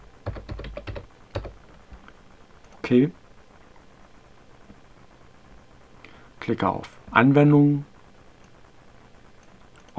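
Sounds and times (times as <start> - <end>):
keystrokes on a computer keyboard typing an admin password: 0.0 - 1.7
speech: 2.9 - 3.2, 6.5 - 7.9.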